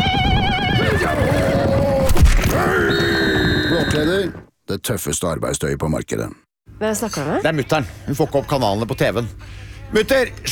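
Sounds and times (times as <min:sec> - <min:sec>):
horse whinnying loudly on the Mongolian steppe: 0:00.8 - 0:04.4
speech: 0:04.2 - 0:10.5.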